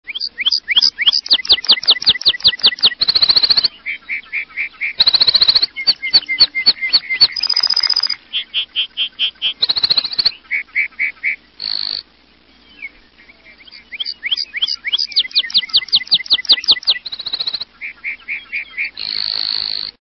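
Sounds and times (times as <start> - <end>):
lark bunting calling: 0.1 - 20.0.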